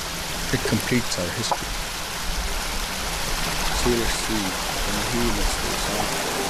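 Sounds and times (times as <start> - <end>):
creek water flowing: 0.0 - 6.4
speech: 0.5 - 1.9, 3.8 - 6.4.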